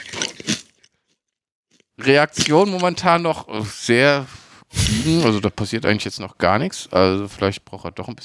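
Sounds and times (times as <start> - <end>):
crunchy chip being bitten and chewed: 0.0 - 3.0, 4.8 - 5.5
speech: 2.0 - 8.2.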